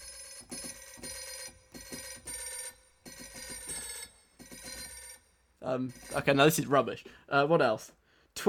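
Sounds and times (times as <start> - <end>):
pop song tune played as phone ringtone: 0.0 - 6.5
speech: 5.6 - 8.4.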